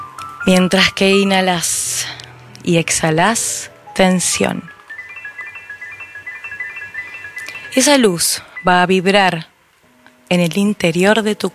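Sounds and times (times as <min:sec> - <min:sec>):
speech: 0:00.5 - 0:04.8, 0:07.8 - 0:09.5, 0:10.3 - 0:11.5
singing bowls ringing during a guided meditation: 0:04.4 - 0:09.2.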